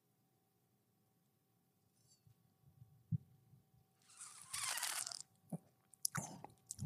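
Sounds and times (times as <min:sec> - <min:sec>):
slurp of red wine: 0:04.1 - 0:05.2
small wet mouth clicks: 0:06.0 - 0:06.8.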